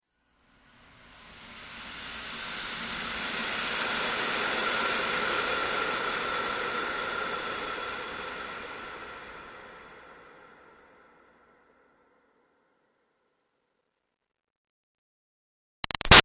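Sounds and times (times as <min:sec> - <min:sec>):
long airy toxin steam release swell: 0:00.7 - 0:10.7.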